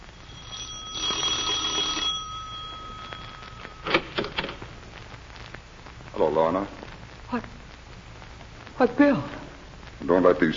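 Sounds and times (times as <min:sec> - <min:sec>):
electric doorbell buzzing: 0:00.0 - 0:04.4
speech: 0:06.2 - 0:07.6, 0:08.8 - 0:09.4, 0:10.0 - 0:10.5.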